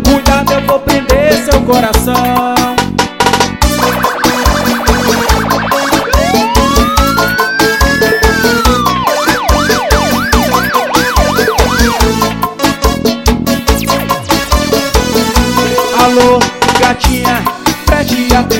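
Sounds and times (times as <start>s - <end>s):
loud driving dance music with a steady beat: 0.0s - 18.5s
speech: 1.7s - 2.6s
police siren wailing and yelping: 3.6s - 12.4s.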